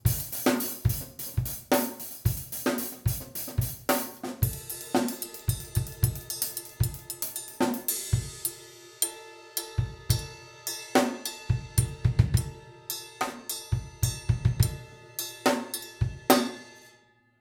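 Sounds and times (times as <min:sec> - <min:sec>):
drums: 0:00.0 - 0:16.8.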